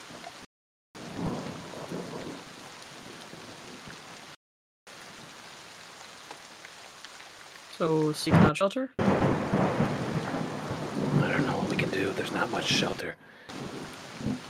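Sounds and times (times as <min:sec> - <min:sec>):
steady hissing rain pouring: 0:00.0 - 0:14.4
low rumble of thunder: 0:01.0 - 0:02.4, 0:08.3 - 0:14.4
speech: 0:07.8 - 0:09.1, 0:12.0 - 0:14.4.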